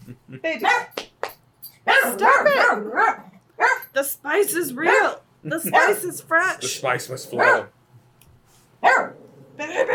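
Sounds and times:
speech: 0.1 - 1.0, 4.0 - 7.8
dog barking: 1.9 - 3.9, 4.9 - 6.0, 7.4 - 7.7, 8.8 - 9.2.

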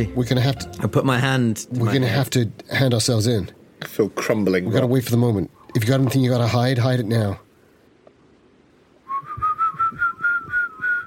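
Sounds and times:
speech: 0.0 - 7.4
faint rumbling noise: 0.0 - 11.0
several whistles in different melodies rising in pitch: 9.0 - 11.0.

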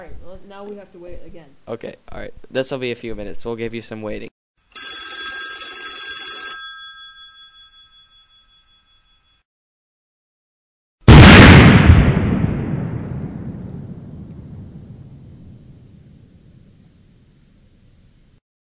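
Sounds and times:
speech: 0.0 - 4.3
bright electronic telephone ringing: 4.8 - 9.4
booming explosion sound effect: 11.1 - 18.4.

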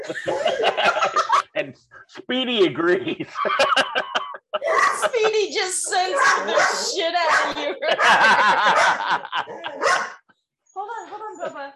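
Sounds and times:
laughter: 0.0 - 10.1, 11.0 - 11.7
speech: 0.1 - 0.4, 2.3 - 4.0, 5.1 - 10.1
dog barking with sharp high-pitched yaps: 4.6 - 5.1, 5.9 - 10.2.

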